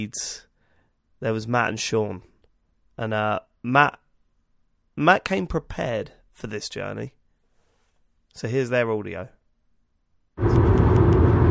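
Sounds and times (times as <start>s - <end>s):
speech: 0.0s - 0.5s, 1.2s - 2.3s, 3.0s - 4.0s, 5.0s - 7.2s, 8.4s - 9.4s, 10.4s - 10.6s
car interior rumble driving in heavy traffic: 10.4s - 11.4s.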